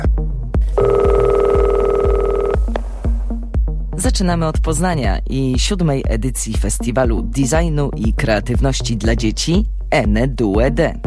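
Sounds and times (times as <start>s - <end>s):
regular low thumping beat: 0.0s - 11.0s
telephone ringing after a number is dialled: 0.8s - 2.7s
speech: 4.1s - 11.0s.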